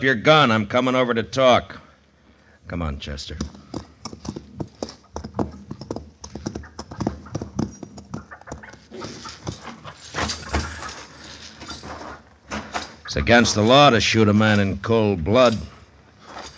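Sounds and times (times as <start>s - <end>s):
speech: 0.0s - 1.8s, 2.7s - 3.6s, 13.2s - 15.7s
horse hooves clip-clopping: 3.4s - 13.7s.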